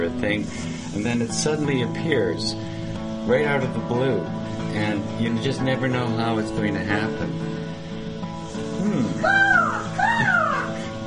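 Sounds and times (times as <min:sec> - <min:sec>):
speech: 0:00.1 - 0:07.6
pet crow cawing: 0:09.2 - 0:10.8.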